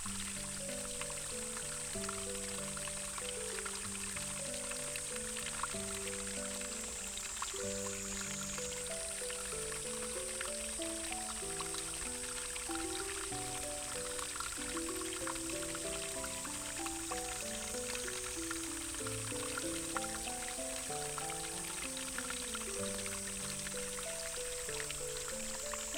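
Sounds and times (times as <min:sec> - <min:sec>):
water flowing: 0:00.0 - 0:25.9.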